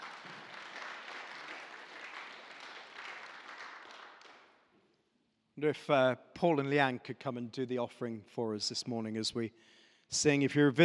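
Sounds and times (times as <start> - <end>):
church audience applauding: 0.0 - 4.5
speech: 5.6 - 10.8.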